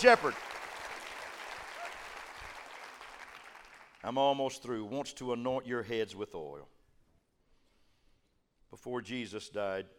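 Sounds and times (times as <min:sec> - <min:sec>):
speech: 0:00.0 - 0:00.5, 0:04.0 - 0:06.7, 0:08.7 - 0:09.9
church congregation clapping hands: 0:00.0 - 0:04.0.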